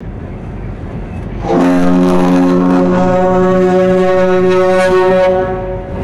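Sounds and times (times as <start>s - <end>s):
deep resonant ship horn blast: 1.4s - 6.0s.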